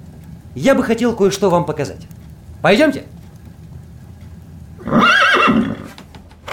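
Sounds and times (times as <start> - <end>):
speech: 0.6 - 3.2
mare neighing with a wavering high whinny: 4.8 - 6.5.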